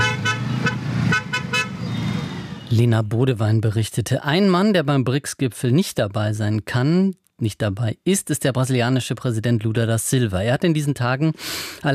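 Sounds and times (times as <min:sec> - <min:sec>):
car horns honking in heavy road traffic: 0:00.0 - 0:02.6
steady low rumble of traffic engines: 0:00.0 - 0:02.8
speech: 0:02.7 - 0:11.9.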